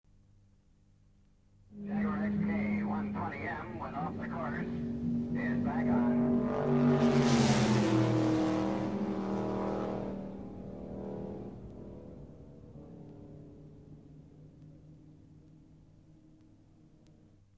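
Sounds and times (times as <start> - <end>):
racing car passing: 1.8 - 14.4.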